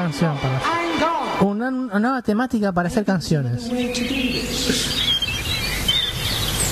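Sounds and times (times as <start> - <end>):
speech: 0.2 - 0.8, 1.4 - 5.0
small bird chirping and tweeting: 3.7 - 6.6.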